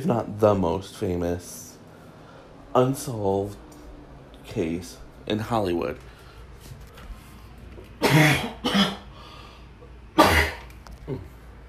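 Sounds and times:
speech: 0:00.0 - 0:01.7, 0:02.8 - 0:03.6, 0:04.5 - 0:06.8, 0:08.1 - 0:08.8
person coughing: 0:08.0 - 0:09.1, 0:10.2 - 0:11.4.

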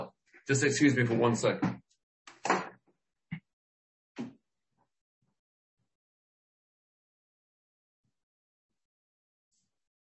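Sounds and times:
speech: 0:00.5 - 0:01.8
door opening and closing: 0:01.6 - 0:02.8.

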